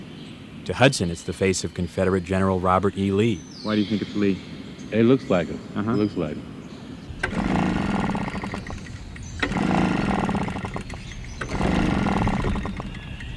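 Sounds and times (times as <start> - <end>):
speech: 0.7 - 6.5
gasoline-powered leaf blower sputtering and whining: 7.2 - 13.2.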